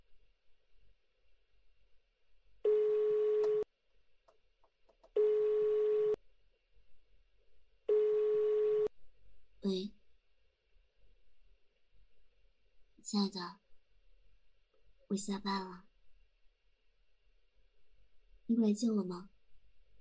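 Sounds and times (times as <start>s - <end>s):
telephone ringback tone while placing a call: 2.7s - 3.6s, 5.2s - 6.2s, 7.9s - 8.9s
speech: 13.1s - 13.6s, 15.1s - 15.9s, 18.5s - 19.3s.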